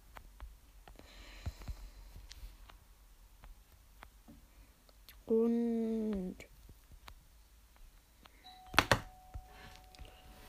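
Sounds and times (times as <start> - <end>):
speech: 5.3 - 5.6
doorbell chime: 8.4 - 10.4.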